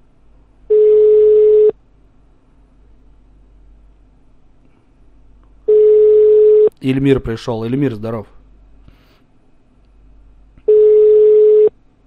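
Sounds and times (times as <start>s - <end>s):
telephone ringing tones after dialing: 0.7s - 1.7s, 5.7s - 6.7s, 10.7s - 11.7s
speech: 6.8s - 8.4s.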